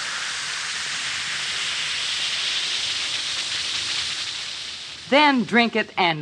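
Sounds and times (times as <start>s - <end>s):
Alka-Seltzer tablets fizzing in a glass of water: 0.0s - 5.7s
speech: 5.1s - 6.1s.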